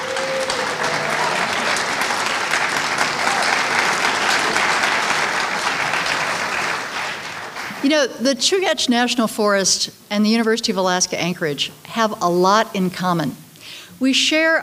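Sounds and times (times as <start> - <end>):
youth forum audience clapping: 0.0 - 8.1
speech: 7.8 - 13.4, 14.0 - 14.6.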